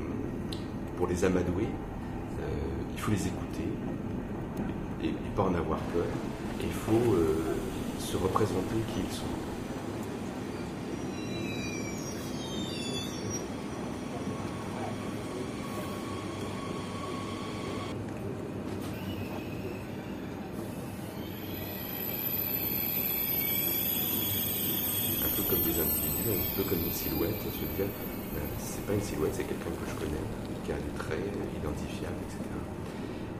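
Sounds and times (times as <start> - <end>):
trains passing near a railway station: 0.0 - 33.3
speech: 1.0 - 9.5, 27.0 - 33.0
high squeals from train wheels: 6.2 - 17.9, 18.8 - 30.9.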